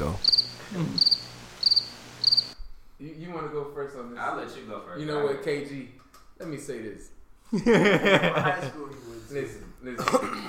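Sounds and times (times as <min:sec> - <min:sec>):
crickets chirping in quick high trills: 0:00.0 - 0:02.6
speech: 0:03.0 - 0:10.4
laughter: 0:07.5 - 0:08.9.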